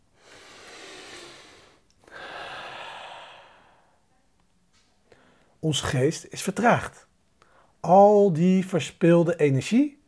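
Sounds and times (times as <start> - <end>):
deep light breathing through the nose: 0.2 - 4.0
speech: 5.6 - 7.1, 7.8 - 10.0.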